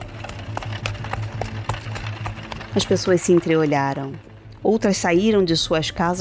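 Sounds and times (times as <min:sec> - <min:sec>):
horse hooves clopping on the ground: 0:00.0 - 0:04.4
horse-drawn cart rolling over dusty ground: 0:00.0 - 0:05.3
speech: 0:02.8 - 0:06.1.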